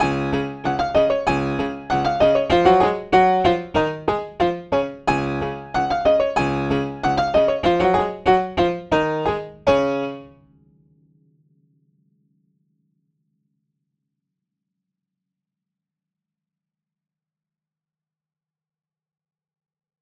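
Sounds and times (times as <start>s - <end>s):
loud Schmidt piano with open lid: 0.0s - 11.2s.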